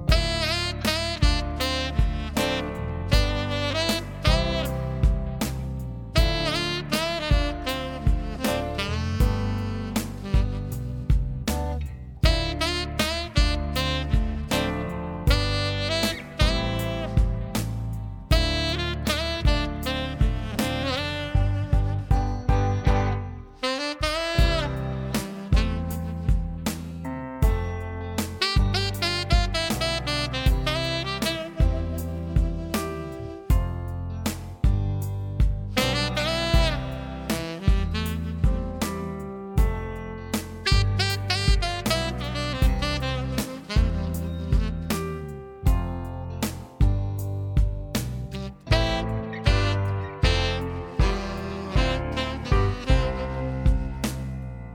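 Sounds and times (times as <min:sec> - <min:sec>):
saxophone: 0:00.1 - 0:35.0, 0:35.7 - 0:54.7.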